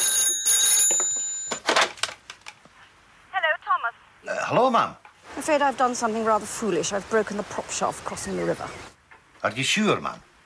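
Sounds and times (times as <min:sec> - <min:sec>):
telephone on a desk ringing: 0:00.0 - 0:01.8
speech: 0:04.5 - 0:10.3.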